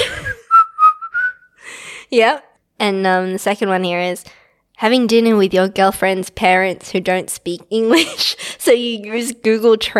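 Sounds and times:
person whistling a brief bright tune: 0.2s - 1.6s
speech: 2.1s - 9.9s.

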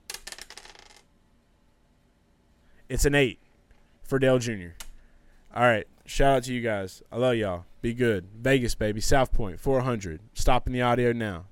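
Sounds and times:
dice rolled clattering across a surface: 0.1s - 1.1s
speech: 2.9s - 3.4s, 4.1s - 4.8s, 5.5s - 11.5s.

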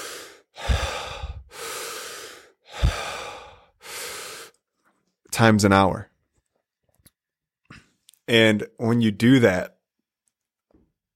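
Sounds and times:
deep forceful breathing during a transformational breathwork session lying down: 0.0s - 4.6s
speech: 5.4s - 6.1s, 8.3s - 9.7s.

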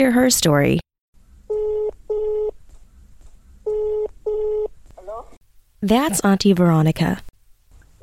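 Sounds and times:
speech: 0.0s - 0.8s, 5.8s - 7.3s
short warbling telephone tone: 1.5s - 2.6s, 3.7s - 4.7s.

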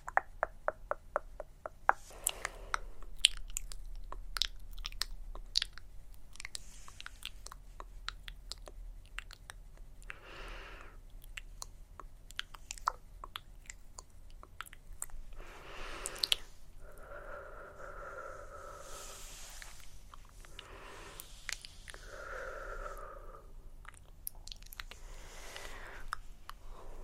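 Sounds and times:
dry mouth sounds with wet clicks and smacks: 0.0s - 10.3s, 11.0s - 26.9s
soft chewing-like crunches: 2.1s - 9.9s, 11.1s - 16.6s, 19.5s - 22.1s, 23.7s - 26.7s
breathy hisses: 15.4s - 23.7s, 25.0s - 27.0s.

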